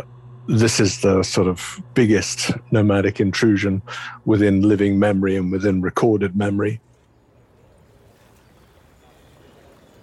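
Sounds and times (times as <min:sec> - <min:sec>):
speech: 0:00.0 - 0:06.9
low rumble of boats on a busy river: 0:00.0 - 0:08.2
faint indistinct activity: 0:00.0 - 0:10.0
water wash of boats on a busy river: 0:07.0 - 0:10.0.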